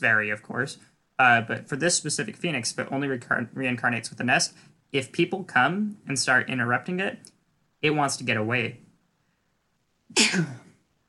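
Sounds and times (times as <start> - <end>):
speech: 0.0 - 8.8, 10.1 - 10.6
person sneezing: 10.1 - 10.8.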